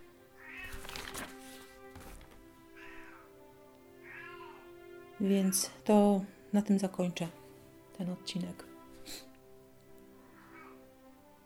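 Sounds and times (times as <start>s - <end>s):
pet cat meowing: 0.4s - 0.8s, 2.7s - 3.3s, 4.0s - 5.1s, 10.2s - 10.8s
scuffling noise: 0.6s - 2.4s
speech: 5.2s - 7.4s, 8.0s - 9.3s.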